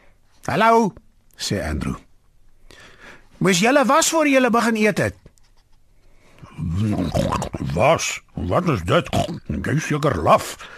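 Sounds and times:
speech: 0:00.5 - 0:02.0, 0:03.4 - 0:05.3, 0:06.6 - 0:10.7
human voice imitating pigs grunting and snorting: 0:06.6 - 0:07.8, 0:09.1 - 0:09.5.

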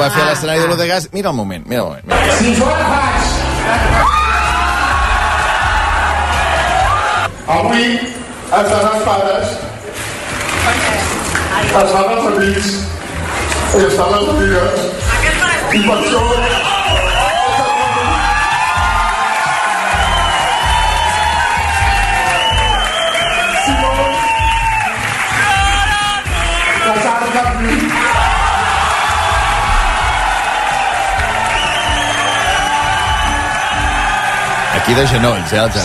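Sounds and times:
speech: 0:00.0 - 0:04.2, 0:07.5 - 0:09.7, 0:10.6 - 0:13.0, 0:13.7 - 0:15.0, 0:15.7 - 0:16.8, 0:34.9 - 0:35.8
packed auditorium crowd cheering and whooping: 0:02.1 - 0:07.3, 0:15.4 - 0:27.0, 0:27.6 - 0:35.8.

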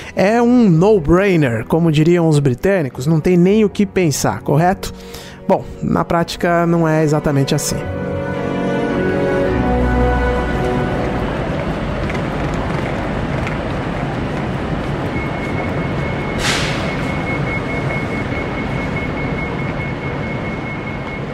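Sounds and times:
speech: 0:00.2 - 0:08.0
droning engine hum at a railway station: 0:07.9 - 0:21.3
low rumble on a railway platform: 0:09.6 - 0:21.3.

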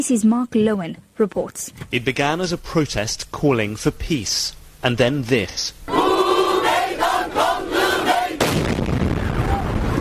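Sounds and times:
speech: 0:00.0 - 0:05.9
crowd of peace protesters chanting and shouting beside Ankara train station in Turkey: 0:05.9 - 0:08.5
crowd screaming and crying after explosion: 0:05.9 - 0:09.9
sudden loud explosion, believed suicide bomb, beside Ankara train station: 0:08.4 - 0:09.9.

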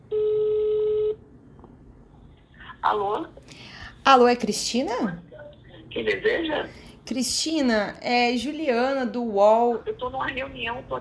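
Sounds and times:
steady mid-pitched telephone tone as a call is placed: 0:00.0 - 0:01.2
speech: 0:02.8 - 0:05.3, 0:06.0 - 0:10.9.

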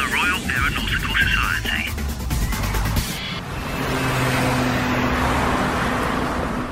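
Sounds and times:
street traffic rumbling at a bus stop: 0:00.0 - 0:06.7
car passing close: 0:02.2 - 0:06.7.

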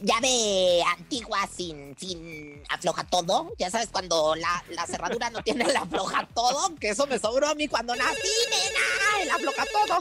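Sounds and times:
speech: 0:00.0 - 0:09.9
laughter: 0:04.8 - 0:06.8
phone ringing with a melodic warbling ringtone for an incoming call: 0:07.9 - 0:09.9.

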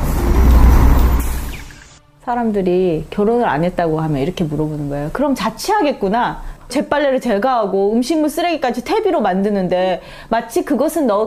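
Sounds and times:
large intercity bus engine rumbling: 0:00.0 - 0:02.0
speech: 0:02.3 - 0:11.2.

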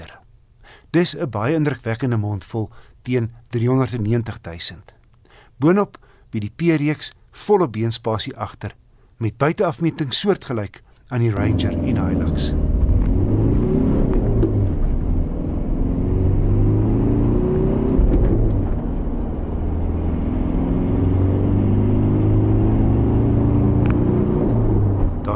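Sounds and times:
speech: 0:00.9 - 0:05.0, 0:05.6 - 0:12.7
2-litre turbo diesel pickup engine accelerating: 0:11.3 - 0:25.3.

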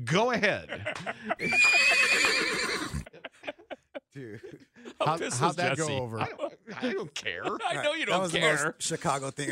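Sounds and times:
speech: 0:00.1 - 0:02.7, 0:04.2 - 0:09.5
laughter: 0:00.4 - 0:09.5
horse neighing: 0:01.4 - 0:03.1.

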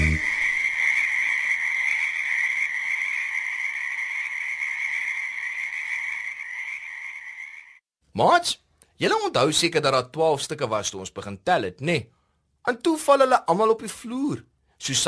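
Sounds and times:
frogs croaking in a dense chorus: 0:00.0 - 0:07.8
speech: 0:08.2 - 0:15.0.

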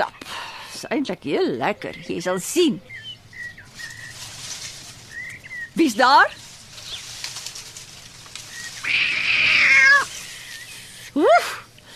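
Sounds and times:
faint outdoor rustling: 0:00.0 - 0:11.9
speech: 0:00.8 - 0:03.1, 0:05.8 - 0:06.4, 0:11.2 - 0:11.6
cat meowing: 0:08.8 - 0:10.1.

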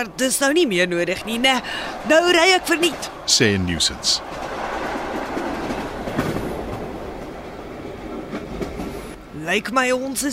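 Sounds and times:
speech: 0:00.0 - 0:04.6, 0:09.5 - 0:10.3
train rumbling on rails: 0:00.0 - 0:10.3
faint clattering of train wheels: 0:01.0 - 0:09.2.

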